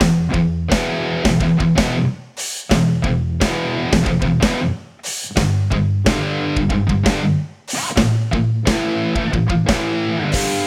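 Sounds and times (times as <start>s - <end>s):
guitar tone: 0.3s - 2.1s, 3.0s - 4.8s, 5.7s - 7.4s, 8.4s - 10.6s.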